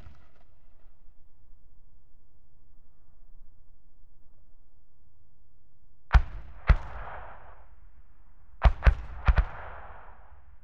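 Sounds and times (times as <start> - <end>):
81mm medium mortar firing: 6.1 - 7.8, 8.6 - 10.4.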